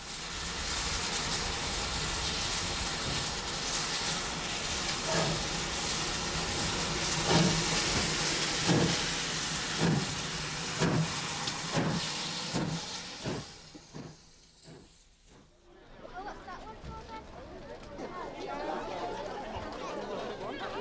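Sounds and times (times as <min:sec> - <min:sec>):
steam train hissing: 0:00.0 - 0:15.6
laughter: 0:17.4 - 0:20.7.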